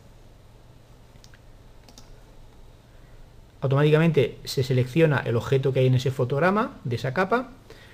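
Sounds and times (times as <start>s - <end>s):
steady low hum: 0.0s - 7.9s
soft computer mouse clicks in animation software: 1.2s - 2.2s
speech: 3.6s - 7.8s.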